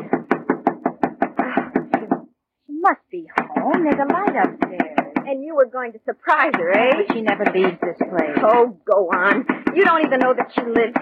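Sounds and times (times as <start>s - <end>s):
firm rapid knocking on the door of a house: 0.0s - 2.3s, 3.3s - 5.4s, 6.3s - 11.0s
speech: 2.9s - 11.0s.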